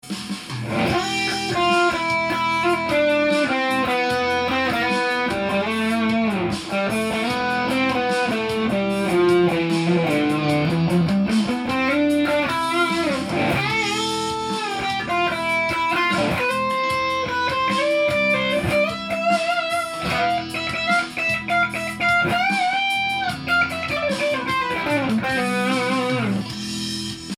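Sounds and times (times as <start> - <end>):
guitar playing in E Phrygian: 0.0 - 27.3.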